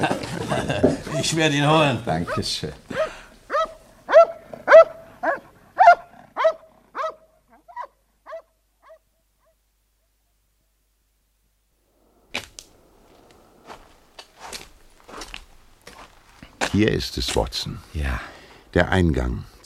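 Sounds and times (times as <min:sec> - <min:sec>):
laughter: 0:00.0 - 0:01.5
speech: 0:00.0 - 0:02.8, 0:16.8 - 0:19.6
dog barking: 0:02.3 - 0:09.6
soft rustling: 0:12.3 - 0:17.5.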